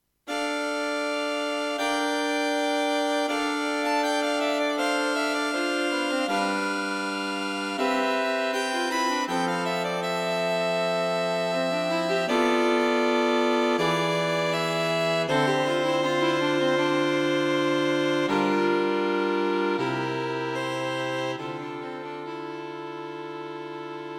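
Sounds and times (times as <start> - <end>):
string quartet concert performance played slowly: 0.3 - 24.1.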